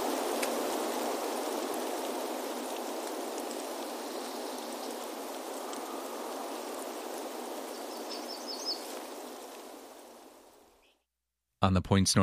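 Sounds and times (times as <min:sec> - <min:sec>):
abundant fresh water flowing in a forest: 0:00.0 - 0:10.8
faint high bird chirps: 0:04.1 - 0:09.4, 0:10.7 - 0:11.1
speech: 0:11.6 - 0:12.2.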